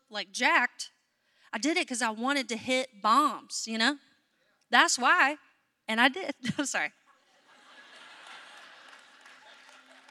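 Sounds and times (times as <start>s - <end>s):
speech: 0.1s - 4.1s, 4.7s - 7.0s
laughter: 7.0s - 10.0s
audience applause: 7.8s - 10.0s.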